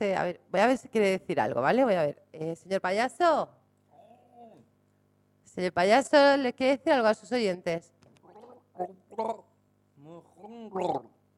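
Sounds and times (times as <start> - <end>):
speech: 0.0 - 3.6, 5.6 - 8.0, 8.8 - 11.2
person drinking water gargling and nearly choking: 8.3 - 9.5, 10.4 - 11.2.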